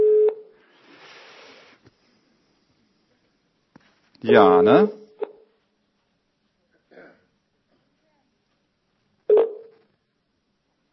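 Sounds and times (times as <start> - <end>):
phone line ringback tone beeps: 0.0 - 0.5, 9.3 - 9.8
faint sound: 0.6 - 10.9
speech: 4.2 - 5.0.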